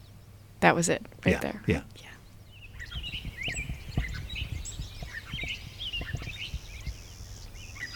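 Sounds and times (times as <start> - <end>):
speech: 0.6 - 2.1
busy bird chirps outdoors: 1.5 - 7.9
clay-colored sparrow song with thin buzzy notes: 2.2 - 7.9
soft low knocks and thumps: 2.8 - 7.1.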